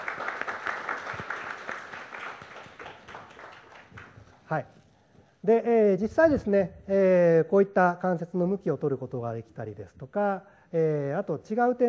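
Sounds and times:
room of people applauding: 0.0 - 4.4
speech: 4.5 - 4.8, 5.4 - 11.8.

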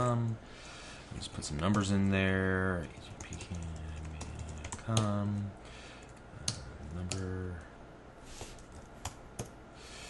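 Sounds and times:
speech: 0.1 - 3.9, 4.9 - 5.6, 7.0 - 7.7
typing on a computer keyboard while filling in a web form: 2.9 - 7.6, 8.6 - 9.5.

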